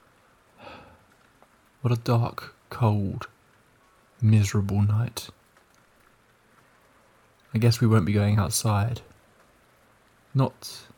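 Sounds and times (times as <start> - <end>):
rain falling: 0.0 - 10.9
speech: 1.8 - 3.3, 4.2 - 5.4, 7.5 - 9.1, 10.3 - 10.9.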